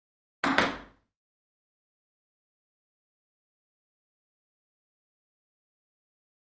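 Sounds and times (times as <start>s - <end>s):
ping pong ball bouncing: 0.4s - 1.0s.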